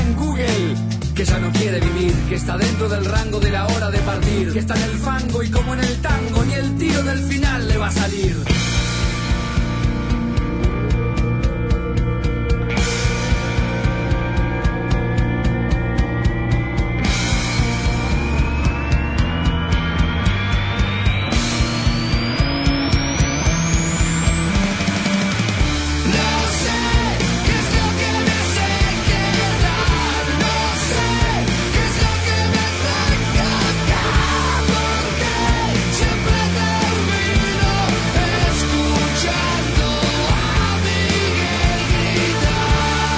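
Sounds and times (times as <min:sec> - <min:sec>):
loud rock song played by a full band: 0:00.0 - 0:43.1
speech: 0:02.3 - 0:08.6
rising sweeping tone: 0:08.9 - 0:36.0.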